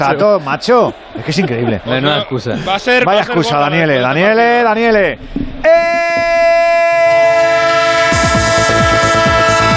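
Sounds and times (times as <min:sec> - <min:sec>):
speech: 0:00.0 - 0:06.0
train horn: 0:05.8 - 0:09.6.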